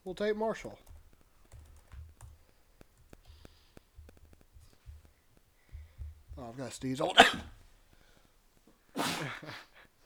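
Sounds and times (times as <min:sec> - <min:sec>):
speech: 0:00.0 - 0:00.9, 0:06.4 - 0:07.6, 0:09.2 - 0:09.7
sneeze: 0:07.1 - 0:07.5, 0:09.0 - 0:09.5.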